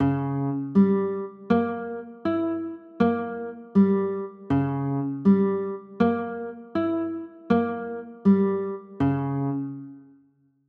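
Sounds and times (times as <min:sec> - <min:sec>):
B flat diminished chords: 0:00.0 - 0:10.0.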